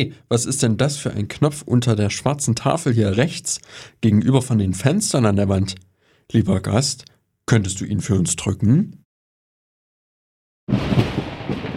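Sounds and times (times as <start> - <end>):
speech: 0.0 - 9.0, 10.7 - 11.1
thunderclap of a thunderstorm rumbling: 10.7 - 11.7.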